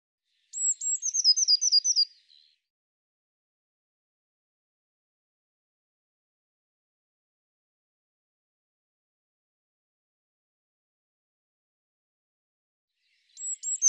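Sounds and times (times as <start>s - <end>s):
Eurasian blue tit chattering calls: 0.6s - 2.1s, 13.4s - 13.8s.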